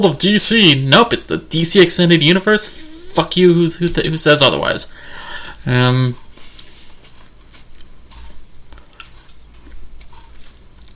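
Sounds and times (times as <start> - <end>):
speech: 0.0 - 6.2
short voiced hum: 0.0 - 10.9
person chewing and swallowing a grape: 5.4 - 10.9.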